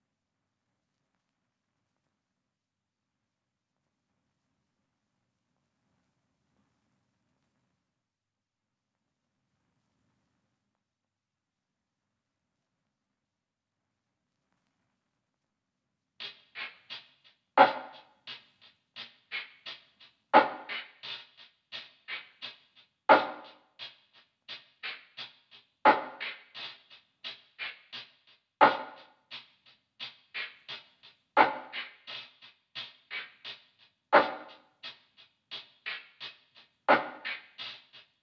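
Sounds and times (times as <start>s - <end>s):
percussion stems in D sharp minor: 16.2s - 38.2s.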